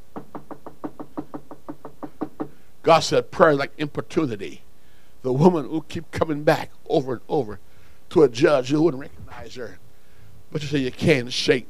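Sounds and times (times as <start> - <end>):
firm knocking on a wooden door: 0.1 - 2.6
speech: 2.8 - 4.6, 5.2 - 9.8, 10.5 - 11.6.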